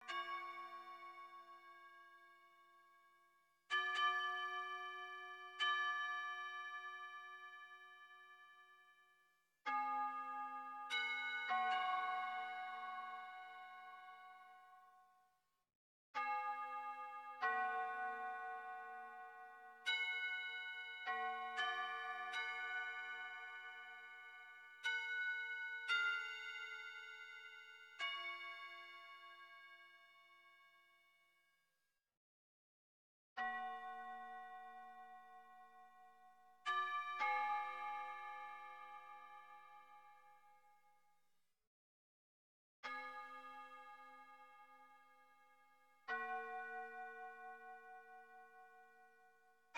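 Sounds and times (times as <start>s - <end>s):
wind chimes: 0.0s - 3.0s, 3.7s - 9.0s, 9.7s - 14.8s, 16.2s - 31.1s, 33.4s - 40.6s, 42.9s - 49.7s.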